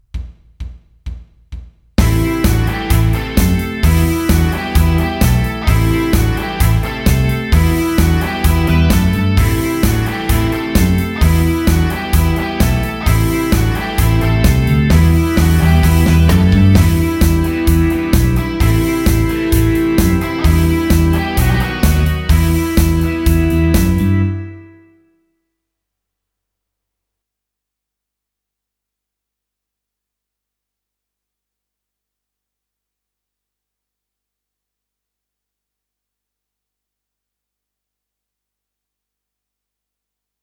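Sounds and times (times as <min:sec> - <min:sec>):
rock riff in E minor: 0:02.0 - 0:24.8.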